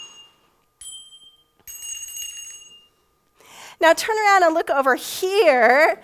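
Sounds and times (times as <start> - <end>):
small handbells rung by a woman: 0.0 - 3.2
speech: 3.8 - 6.0.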